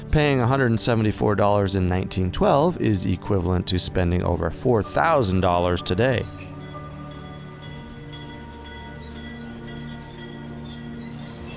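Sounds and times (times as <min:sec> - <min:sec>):
speech: 0:00.1 - 0:06.4
train carrying bloodhounds rolling on rails: 0:06.3 - 0:11.5.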